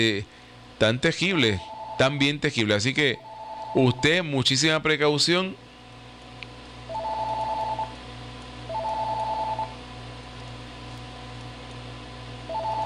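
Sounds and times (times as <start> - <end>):
speech: 0.0 - 5.6
steady low hum: 0.0 - 12.8
telephone ringing with a warbling electronic tone: 1.3 - 4.6, 6.9 - 8.0, 8.7 - 9.8, 12.5 - 12.8.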